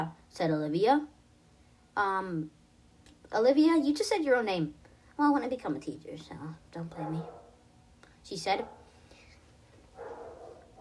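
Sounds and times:
speech: 0:00.0 - 0:01.2, 0:02.0 - 0:02.6, 0:03.3 - 0:07.4, 0:08.2 - 0:08.8
dog barking: 0:07.0 - 0:07.6, 0:08.6 - 0:08.9, 0:10.0 - 0:10.7.

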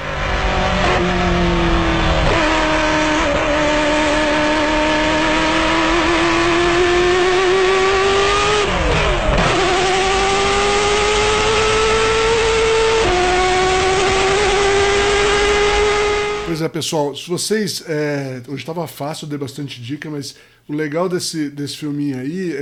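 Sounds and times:
Ferrari F40 LM race car engine revving: 0:00.0 - 0:16.5
speech: 0:16.8 - 0:22.6.

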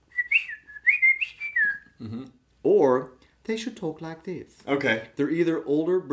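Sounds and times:
voice imitating a robot droid's whistles and beeps: 0:00.2 - 0:01.9
speech: 0:02.0 - 0:06.1.

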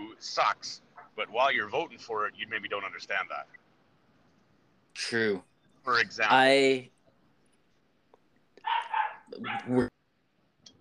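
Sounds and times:
speech: 0:00.2 - 0:03.6, 0:05.0 - 0:07.0, 0:08.6 - 0:10.0
tiny female foster dog barking high-pitched in a house: 0:08.6 - 0:09.8.

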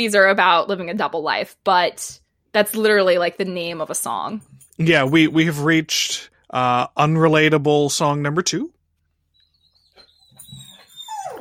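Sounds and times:
speech: 0:00.0 - 0:08.8
female puppy whining in high-pitched whimpers: 0:09.3 - 0:11.3.

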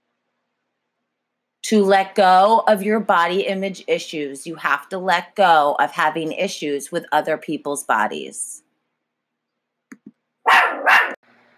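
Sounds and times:
speech: 0:01.6 - 0:08.6
dog barking: 0:10.4 - 0:11.2.

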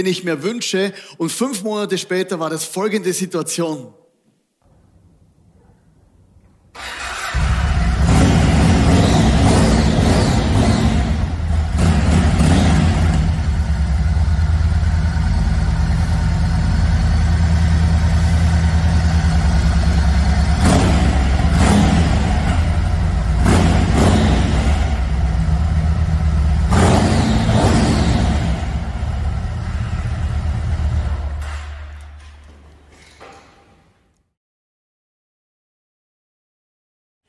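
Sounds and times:
speech: 0:00.0 - 0:04.0
motorcycle engine idling and revving: 0:06.8 - 0:32.4.

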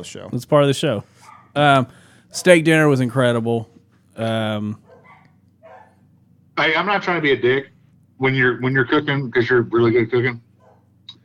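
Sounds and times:
speech: 0:00.0 - 0:04.8, 0:06.6 - 0:10.4
dog barking: 0:01.2 - 0:01.6, 0:02.3 - 0:02.6, 0:04.8 - 0:06.0, 0:10.6 - 0:10.9.

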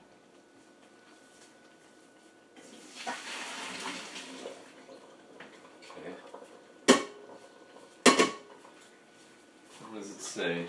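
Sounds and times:
water pouring while draining cooked pasta from a pot: 0:02.6 - 0:06.6
speech: 0:10.4 - 0:10.6.

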